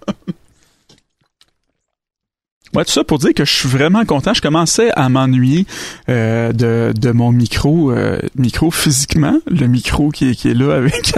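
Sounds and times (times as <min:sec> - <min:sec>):
person taking a small sip of water and swallowing: 0:00.3 - 0:02.0
speech: 0:02.8 - 0:11.1
laughter: 0:10.7 - 0:11.1.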